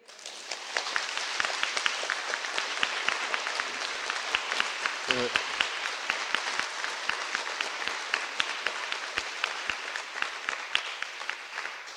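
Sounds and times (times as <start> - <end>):
sizable crowd applauding: 0.0 - 11.9
faint voice: 5.1 - 5.4.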